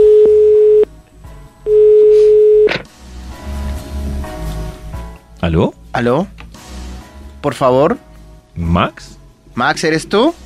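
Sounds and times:
telephone call ringback tone: 0:00.0 - 0:00.9, 0:01.7 - 0:02.8
speech: 0:05.5 - 0:06.4, 0:07.4 - 0:10.4.

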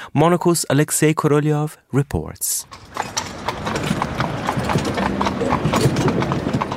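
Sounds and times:
speech: 0:00.1 - 0:03.9
draft horses' hooves clip-clopping on pavement pulling an open fiaker carriage: 0:02.6 - 0:06.7
street ambience in Vienna's city centre, Austria: 0:02.6 - 0:06.7
faint rattle of an open fiaker carriage: 0:02.7 - 0:06.7.

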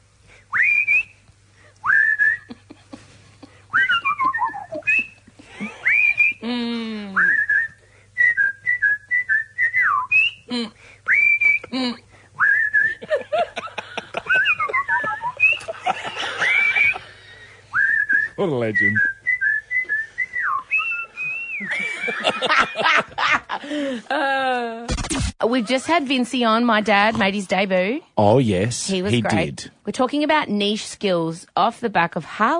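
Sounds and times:
melodic whistled tune with slides and warbles: 0:00.5 - 0:01.2, 0:01.8 - 0:02.4, 0:03.7 - 0:05.2, 0:05.8 - 0:06.4, 0:07.2 - 0:10.5, 0:11.1 - 0:11.7, 0:12.4 - 0:13.0, 0:17.7 - 0:21.8
laughter: 0:12.9 - 0:17.3, 0:21.6 - 0:24.8
speech: 0:18.5 - 0:19.1, 0:25.5 - 0:32.5.

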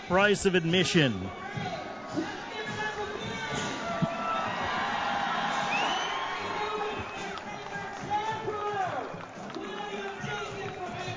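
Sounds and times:
large outdoor crowd cheering and shouting: 0:00.0 - 0:11.1
speech: 0:00.1 - 0:01.7.

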